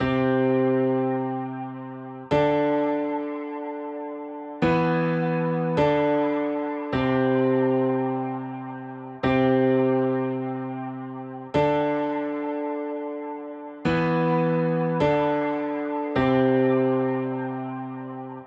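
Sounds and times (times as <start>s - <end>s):
wet piano in E minor at 104 BPM: 0.0s - 18.4s.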